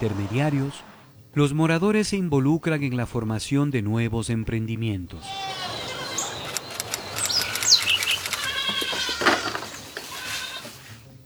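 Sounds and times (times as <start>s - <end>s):
speech: 0.0s - 5.6s
steady ambient hum: 0.0s - 11.2s
small birds chirping: 5.2s - 10.7s
goats bleating inside a stable: 5.2s - 11.0s.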